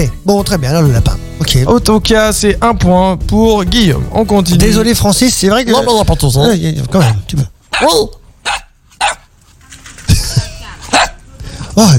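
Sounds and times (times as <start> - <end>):
speech: 0.0 - 8.2, 11.8 - 11.9
puppies yapping with high-pitched barks: 7.0 - 9.3.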